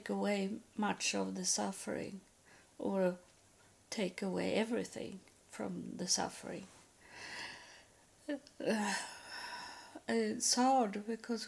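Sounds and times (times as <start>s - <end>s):
speech: 0.0s - 3.3s, 3.9s - 7.4s, 8.3s - 9.2s, 10.0s - 11.4s
steady hiss: 0.0s - 11.4s
heavy rasping breathing: 7.1s - 7.9s, 8.8s - 10.0s.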